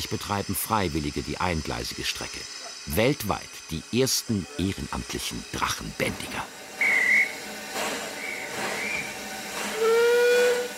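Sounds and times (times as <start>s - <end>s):
speech: 0.0s - 6.6s
steam locomotive hiss of steam: 0.0s - 10.7s
steam locomotive whistle on a narrow-gauge railway in Tywyn: 6.8s - 10.7s.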